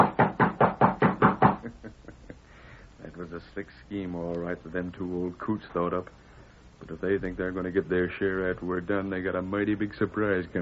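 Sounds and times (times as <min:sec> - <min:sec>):
firm knocks on a wooden ranch house door: 0:00.0 - 0:01.7
speech: 0:03.6 - 0:10.6.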